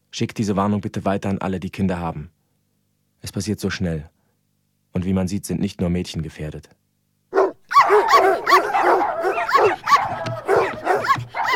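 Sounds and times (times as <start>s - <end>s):
speech: 0.2s - 2.4s, 3.2s - 4.2s, 4.9s - 6.8s
Golden Retrievers barking and yipping: 7.4s - 11.5s.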